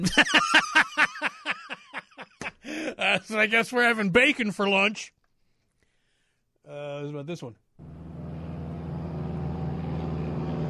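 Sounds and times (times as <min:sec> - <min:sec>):
speech: 0:00.0 - 0:00.7, 0:03.3 - 0:05.2, 0:06.7 - 0:07.6
laughter: 0:00.0 - 0:03.2
propeller plane engine droning overhead: 0:07.8 - 0:10.6.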